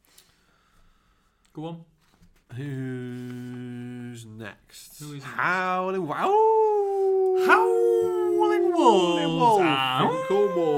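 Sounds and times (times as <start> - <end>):
speech: 1.6 - 6.8, 7.4 - 10.7
several voices howling: 6.8 - 10.7.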